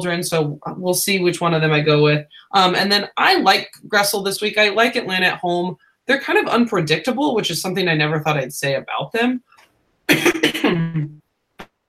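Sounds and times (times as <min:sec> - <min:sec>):
speech: 0:00.0 - 0:09.5, 0:10.1 - 0:10.8
person coughing: 0:10.1 - 0:11.2.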